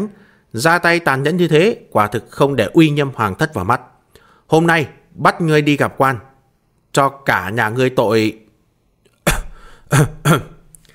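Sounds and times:
speech: 0:00.0 - 0:03.9, 0:04.5 - 0:06.3, 0:06.9 - 0:08.4, 0:09.9 - 0:10.5
person coughing lightly into a clenched fist: 0:09.2 - 0:10.7.

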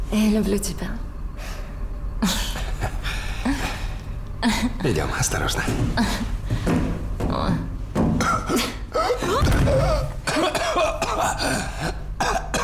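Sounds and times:
speech: 0:00.1 - 0:01.1, 0:02.2 - 0:02.5, 0:04.4 - 0:06.8, 0:07.3 - 0:07.8, 0:08.5 - 0:12.0
man choking and coughing, unable to breathe: 0:02.3 - 0:03.9, 0:08.2 - 0:12.6.

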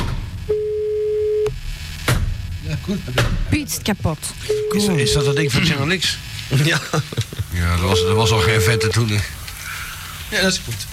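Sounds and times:
mid-pitched electronic telephone beep: 0:00.5 - 0:01.5, 0:04.5 - 0:05.5, 0:07.9 - 0:09.0
speech: 0:02.7 - 0:09.4, 0:10.3 - 0:10.9.

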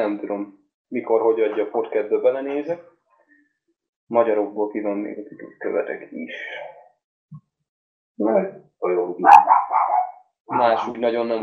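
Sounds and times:
speech: 0:00.0 - 0:02.9, 0:04.1 - 0:06.8, 0:08.2 - 0:11.4
dog barking: 0:09.2 - 0:10.2.

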